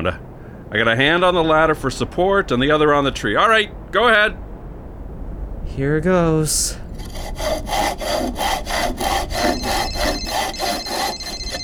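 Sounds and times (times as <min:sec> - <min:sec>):
speech: 0:00.0 - 0:04.4, 0:05.7 - 0:08.4
hand saw cutting through thick tree trunk: 0:07.0 - 0:11.6.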